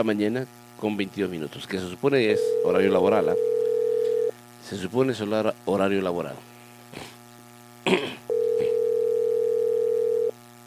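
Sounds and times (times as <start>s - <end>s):
speech: 0.0s - 3.5s, 4.6s - 7.1s
telephone ringback tone on an outgoing call to a town hall office: 2.4s - 4.3s, 8.3s - 10.4s.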